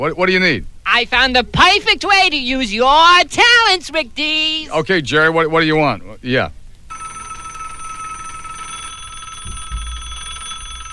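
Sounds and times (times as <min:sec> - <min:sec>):
speech: 0:00.0 - 0:06.6
telephone ringing with bright electronic tone: 0:06.9 - 0:10.9.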